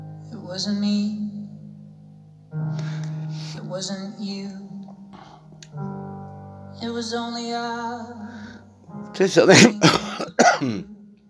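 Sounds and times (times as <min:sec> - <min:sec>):
speech: 0:00.5 - 0:01.3, 0:03.6 - 0:04.6, 0:06.8 - 0:08.5, 0:09.2 - 0:11.0
person coughing harshly: 0:09.5 - 0:10.9
rough throat clearing: 0:09.5 - 0:10.9.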